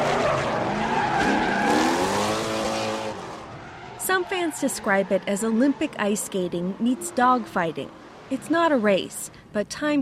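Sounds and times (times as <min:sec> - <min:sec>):
drift car tires squealing while sliding sideways: 0:00.0 - 0:08.3
drift car engine roar: 0:00.0 - 0:08.5
speech: 0:04.3 - 0:10.0.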